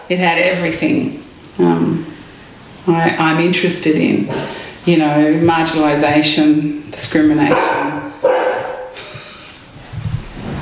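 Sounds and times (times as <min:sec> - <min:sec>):
speech: 0:00.1 - 0:02.1, 0:02.8 - 0:08.1
dog barking: 0:07.5 - 0:09.0.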